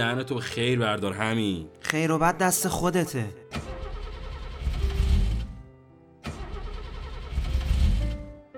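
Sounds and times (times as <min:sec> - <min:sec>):
speech: 0:00.0 - 0:03.5
car engine cranking, failing to start: 0:03.5 - 0:05.6, 0:06.2 - 0:08.3.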